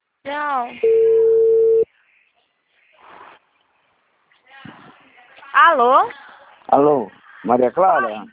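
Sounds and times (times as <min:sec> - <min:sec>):
speech: 0:00.2 - 0:01.3, 0:05.6 - 0:08.3
telephone tone after a dropped call: 0:00.8 - 0:01.9.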